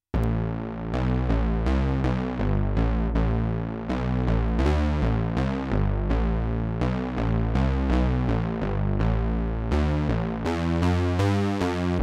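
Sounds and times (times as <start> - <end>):
dirty bass lead synth with poly patches: 0.1 - 12.0.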